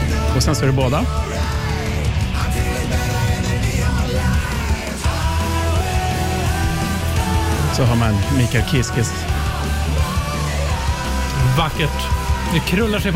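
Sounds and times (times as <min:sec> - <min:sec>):
loud dense rock song with driving full-band mix: 0:00.0 - 0:13.1
powerful male voice singing: 0:00.0 - 0:13.1
speech: 0:00.4 - 0:01.5, 0:07.8 - 0:09.3, 0:11.6 - 0:13.1.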